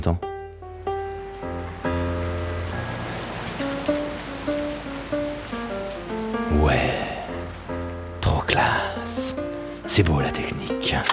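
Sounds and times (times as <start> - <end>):
speech: 0.0 - 0.3, 9.9 - 11.1
rain falling: 0.5 - 11.1.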